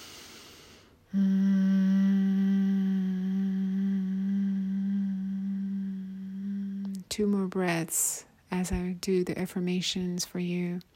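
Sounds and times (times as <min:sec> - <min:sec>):
speech: 0:01.1 - 0:01.4, 0:07.2 - 0:10.9
person chanting a mantra syllable: 0:01.1 - 0:07.2.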